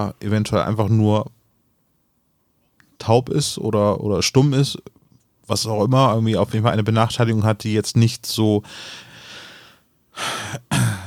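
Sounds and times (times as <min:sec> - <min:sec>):
speech: 0:00.0 - 0:01.4, 0:03.0 - 0:09.1, 0:10.2 - 0:10.9
person clearing throat: 0:10.2 - 0:11.0.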